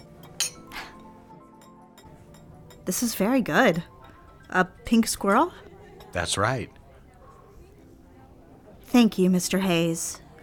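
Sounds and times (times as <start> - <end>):
cocktail glass and martini glass clinking in a toast: 0.0 - 6.5
speech: 2.9 - 6.8, 9.0 - 10.2.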